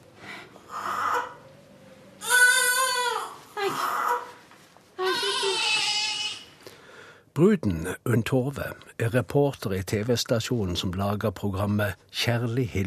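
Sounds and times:
newborn baby crying on a restroom floor: 0.7s - 1.4s, 2.2s - 4.4s, 5.0s - 6.6s
speech: 7.4s - 12.8s.

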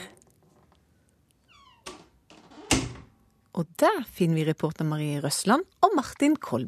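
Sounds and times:
old door creaking open: 1.5s - 3.2s
speech: 3.6s - 6.6s.

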